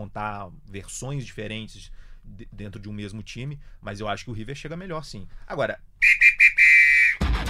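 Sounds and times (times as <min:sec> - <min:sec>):
speech: 0:00.0 - 0:06.4
referee's whistle blasts: 0:06.0 - 0:07.3.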